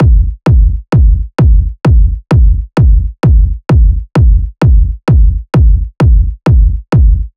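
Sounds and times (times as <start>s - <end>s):
techno kick drum loop: 0.0s - 7.3s.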